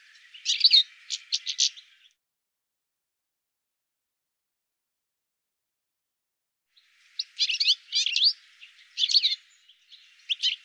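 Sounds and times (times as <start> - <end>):
bird twittering and chirping: 0.0 - 2.2, 6.8 - 10.6.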